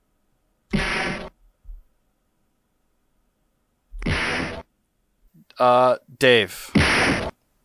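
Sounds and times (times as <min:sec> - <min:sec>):
fighting video game punch or kick impact sound effect: 0:00.7 - 0:01.3, 0:04.0 - 0:04.7, 0:06.7 - 0:07.4
speech: 0:05.6 - 0:07.1.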